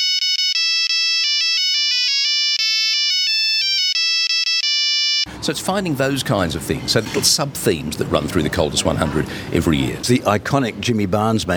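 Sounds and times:
Nokia mobile phone from 2000 playing an electronic ringtone melody: 0:00.0 - 0:05.3
speech: 0:05.4 - 0:11.5.

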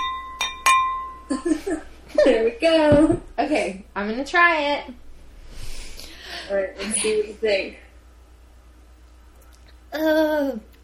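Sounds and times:
wine glasses clinking with a ringing tone: 0:00.0 - 0:01.4
speech: 0:01.4 - 0:05.0, 0:06.5 - 0:07.8, 0:09.9 - 0:10.7.

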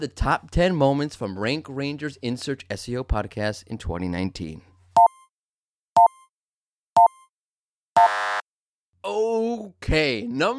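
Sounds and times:
speech: 0:00.0 - 0:04.7, 0:09.1 - 0:10.5
short electronic countdown beeps: 0:05.0 - 0:05.3, 0:06.0 - 0:06.3, 0:07.0 - 0:07.3
longer richer buzzing tone ending the countdown: 0:08.0 - 0:08.4.

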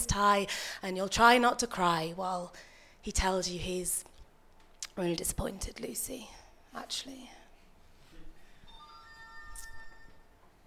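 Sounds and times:
soft hum: 0:00.0 - 0:10.6
speech: 0:00.2 - 0:04.1, 0:05.0 - 0:07.4
phone ringtone electronic melody: 0:08.7 - 0:10.3.

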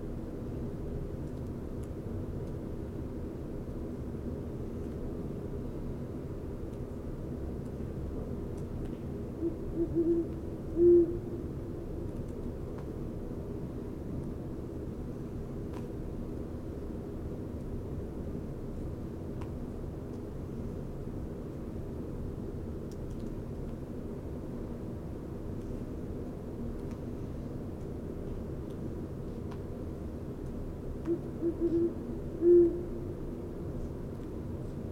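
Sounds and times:
steady low rumble: 0:00.0 - 0:34.9
Great Horned Owl hooting: 0:09.4 - 0:11.5, 0:31.1 - 0:33.1.

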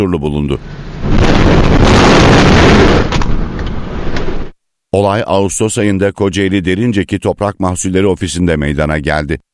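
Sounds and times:
speech: 0:00.0 - 0:02.0, 0:04.9 - 0:09.5
gusty wind-like noise: 0:00.6 - 0:04.6
grain silo explosion roar with low rumble: 0:00.9 - 0:04.5.

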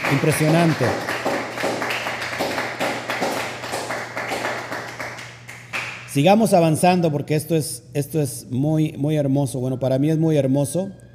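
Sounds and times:
crowd applauding: 0:00.0 - 0:06.0
speech: 0:00.1 - 0:01.2, 0:06.1 - 0:11.0.

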